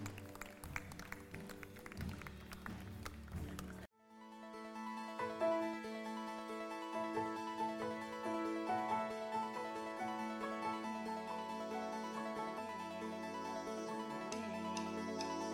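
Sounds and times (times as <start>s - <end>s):
crowd clapping hands: 0.0s - 3.9s
soft sustained music: 0.0s - 15.5s.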